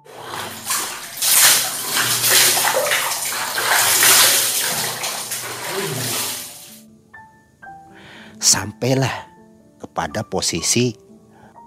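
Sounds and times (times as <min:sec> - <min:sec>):
water sloshing and splashing in a bathroom from someone bathing: 0:00.0 - 0:06.8
speech: 0:08.5 - 0:09.3, 0:10.0 - 0:11.0.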